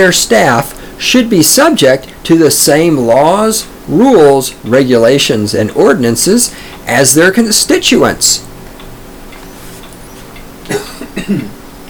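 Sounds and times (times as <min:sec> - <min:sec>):
speech: 0:00.0 - 0:08.6, 0:11.2 - 0:11.6
coughs away from the microphone: 0:10.7 - 0:11.6.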